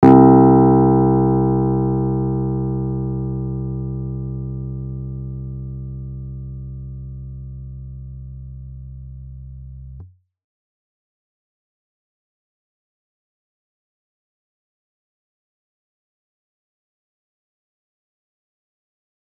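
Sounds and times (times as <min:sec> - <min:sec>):
modelled piano notes: 0:00.0 - 0:08.2.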